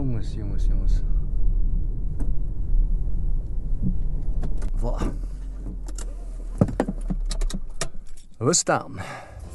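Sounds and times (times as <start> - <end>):
car interior rumble while driving in busy school traffic: 0.0 - 8.4
speech: 0.2 - 1.2, 3.8 - 5.3, 8.4 - 9.3
faint clicks and thumps: 3.4 - 8.4.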